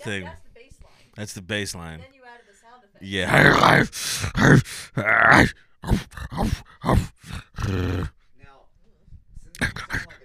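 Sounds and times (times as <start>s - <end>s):
speech: 0.0s - 0.4s, 1.2s - 2.2s, 3.0s - 8.2s, 9.6s - 10.2s
voiced grunting: 3.1s - 8.2s, 9.5s - 10.2s
person growling like a dog: 3.2s - 8.2s, 9.6s - 10.2s.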